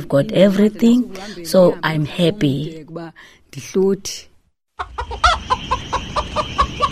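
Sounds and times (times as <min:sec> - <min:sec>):
speech: 0:00.0 - 0:06.9
chickens clucking in a garden: 0:04.8 - 0:06.9.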